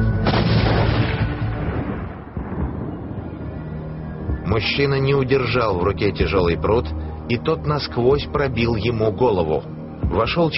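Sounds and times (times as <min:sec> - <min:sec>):
blasting powder explosion with heavy rumble: 0:00.2 - 0:03.6
speech: 0:04.5 - 0:10.5.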